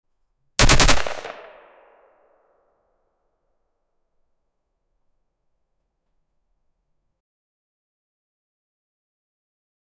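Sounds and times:
different single firearm shots: 0:00.6 - 0:01.8.

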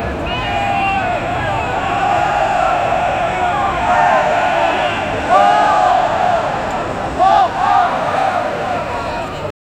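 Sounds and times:
large crowd of people at a political event: 0:00.0 - 0:09.5.

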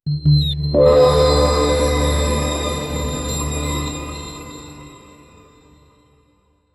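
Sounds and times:
magical appearance effect: 0:00.8 - 0:05.8.

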